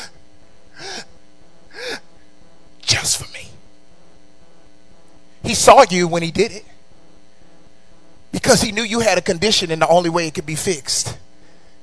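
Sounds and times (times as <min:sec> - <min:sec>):
person imitating gasping breaths of a man on a cross: 0:00.7 - 0:01.1, 0:01.7 - 0:02.1
speech: 0:05.5 - 0:06.7, 0:08.5 - 0:11.2.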